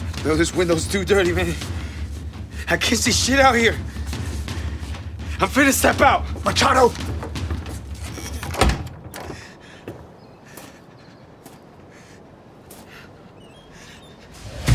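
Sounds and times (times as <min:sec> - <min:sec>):
speech: 0:00.2 - 0:01.9, 0:02.7 - 0:04.0, 0:05.4 - 0:07.4
door opening with a short creak: 0:07.9 - 0:09.5.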